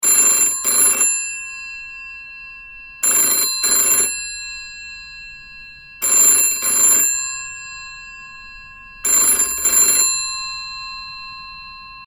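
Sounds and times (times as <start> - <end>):
classic phone ringtone: 0.0 - 12.0.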